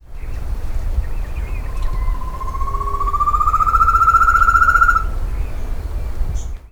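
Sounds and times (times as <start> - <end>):
Chamaeza ruficauda calling: 1.0 - 5.3.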